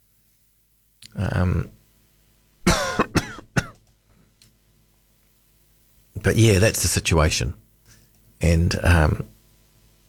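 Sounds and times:
speech: 1.2 - 1.8, 6.2 - 7.6, 8.4 - 9.4
harsh coughs: 2.6 - 3.8
rough throat clearing: 2.7 - 3.8.

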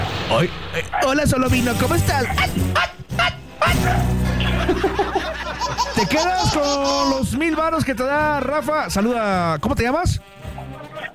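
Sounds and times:
speech: 0.3 - 10.4
dog barking: 2.2 - 4.2
people laughing: 3.2 - 8.3.

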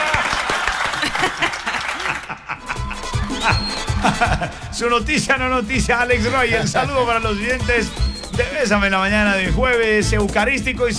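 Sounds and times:
applause from a small group: 0.0 - 4.8
laughter: 0.0 - 8.8
scattered voices: 2.6 - 10.9
speech: 4.1 - 10.9.

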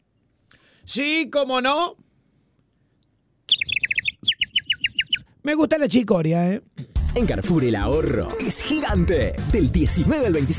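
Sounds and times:
speech: 0.9 - 2.0, 5.5 - 10.5
person whistling chirps imitating a little bird: 3.5 - 5.3.

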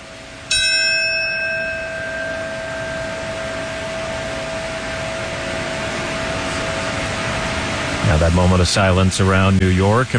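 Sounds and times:
steady hiss: 0.0 - 10.1
deep memorial bell toll: 0.5 - 7.8
speech: 8.2 - 10.1.

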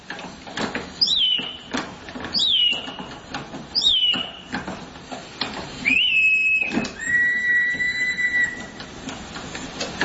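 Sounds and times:
whirring clicking clockwork mechanism: 0.0 - 10.0
clockwork mechanical bird whistling a chirpy song: 1.0 - 1.7, 2.3 - 3.0, 3.8 - 4.5, 5.8 - 8.8.

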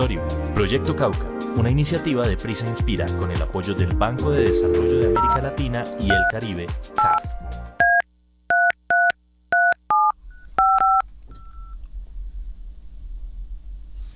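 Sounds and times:
speech: 0.0 - 7.3
telephone keypad dialing tones: 4.4 - 5.4, 7.8 - 11.0.

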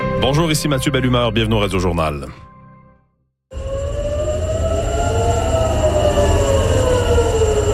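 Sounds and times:
speech: 0.2 - 2.5
sirens wailing in a city: 3.5 - 7.7.

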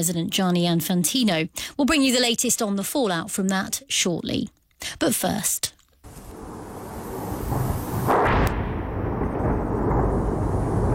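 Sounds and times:
speech: 0.0 - 6.2
deep broadband roar of Russian strikes on Kyiv during an overnight attack: 6.3 - 10.9
loud blast of a Russian strike on Kyiv: 6.3 - 10.9.

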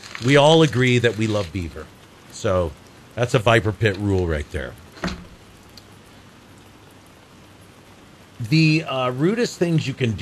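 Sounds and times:
steady rain falling: 0.0 - 10.2
speech: 0.2 - 5.2, 8.4 - 10.2.

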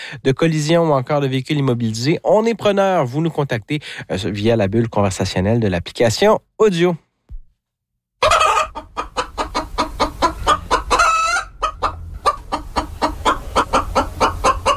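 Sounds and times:
speech: 0.1 - 7.0
rooster crowing: 8.2 - 8.8, 10.0 - 12.4, 13.2 - 14.7
chickens clucking: 8.2 - 14.7.

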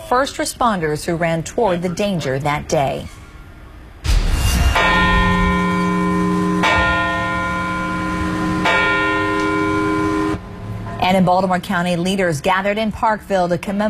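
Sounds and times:
speech: 0.1 - 3.2, 11.1 - 13.8
deep memorial bells tolling: 4.0 - 12.2.

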